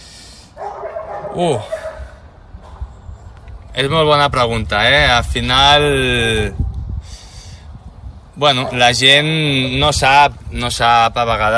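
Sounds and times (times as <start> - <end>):
dog giving a short high bark sliding into a whine: 0.6 - 2.2, 8.6 - 8.9
speech: 1.4 - 1.8, 3.8 - 6.6, 8.4 - 11.5.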